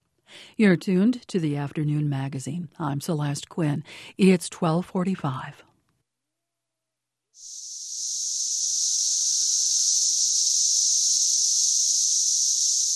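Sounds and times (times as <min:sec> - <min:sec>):
speech: 0:00.6 - 0:05.7
periodical cicadas chorus: 0:07.4 - 0:12.9.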